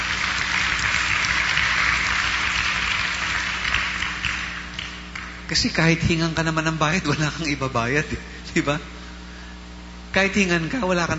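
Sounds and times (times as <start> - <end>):
audience applause during a sermon: 0.0 - 5.4
speech: 5.5 - 9.0, 10.1 - 11.1.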